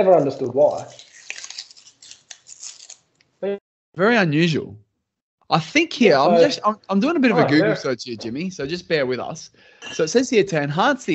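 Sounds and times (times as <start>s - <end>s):
speech: 0.0s - 1.1s, 3.4s - 4.8s, 5.5s - 11.1s
paper label tearing off beer bottle neck: 0.2s - 3.1s.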